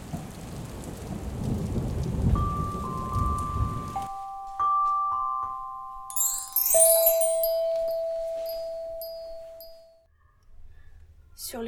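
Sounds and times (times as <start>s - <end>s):
dense heavy rain on a street: 0.0s - 4.0s
bell-like chime tones: 2.4s - 10.0s
bright tinkling: 6.1s - 10.0s.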